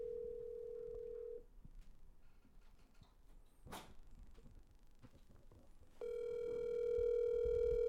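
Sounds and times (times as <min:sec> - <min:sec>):
phone ringing tone of a phone-a-friend call in a quiz game: 0:00.0 - 0:01.4, 0:06.0 - 0:07.8.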